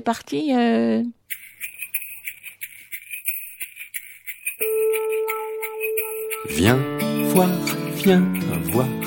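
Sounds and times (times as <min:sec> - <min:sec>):
speech: 0:00.0 - 0:01.2, 0:06.4 - 0:09.0
bright high twinkling notes of a song intro: 0:04.6 - 0:09.0
steady sustained tones of a song intro: 0:04.6 - 0:09.0.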